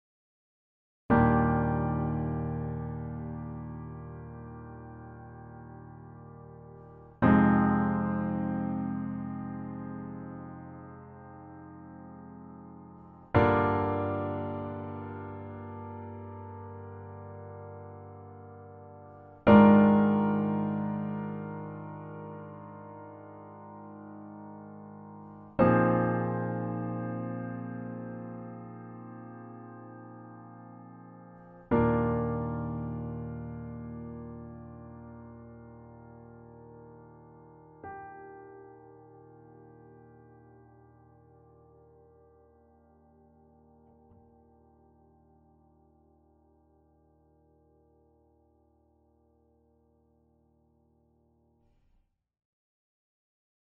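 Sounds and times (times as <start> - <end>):
Steinway Model D grand piano: 1.1 - 51.6.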